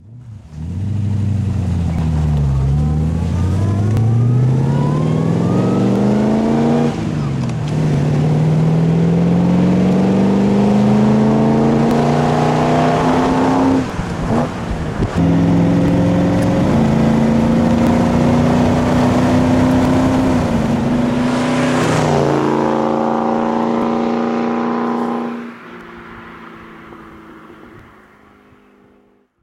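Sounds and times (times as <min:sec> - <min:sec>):
Daimler SP250 Dart car engine: 0:00.0 - 0:29.4.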